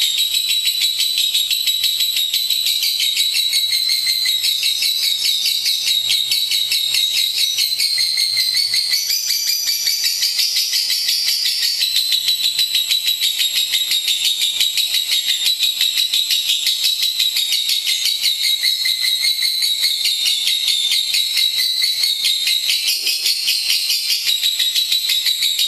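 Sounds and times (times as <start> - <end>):
lovebird song: 0.0 - 25.6.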